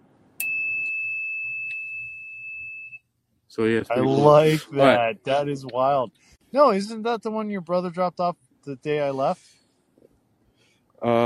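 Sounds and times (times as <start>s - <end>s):
faint low hum: 0.0s - 11.2s
bright metal bell struck and ringing: 0.4s - 3.0s
speech: 3.5s - 9.6s, 11.0s - 11.2s.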